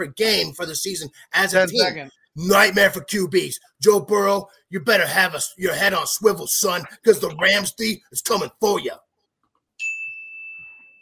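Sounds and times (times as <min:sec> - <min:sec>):
speech: 0:00.0 - 0:09.0
timer bell ding: 0:09.8 - 0:11.0.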